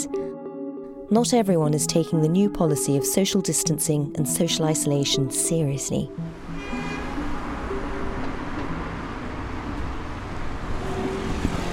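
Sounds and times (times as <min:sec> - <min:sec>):
speech: 0:00.0 - 0:00.4, 0:01.1 - 0:06.9
street traffic roar on a London street on a Sunday evening: 0:05.9 - 0:11.7.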